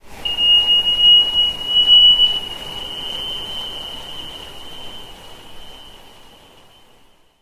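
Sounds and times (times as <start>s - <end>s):
sonar sweep: 0.2s - 6.0s.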